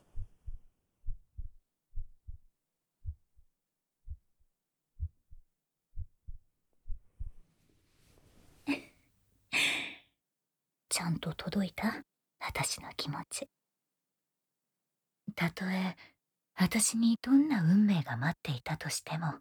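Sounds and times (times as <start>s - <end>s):
pounding heartbeat: 0.1s - 7.4s
speech: 11.0s - 13.6s, 15.4s - 19.3s.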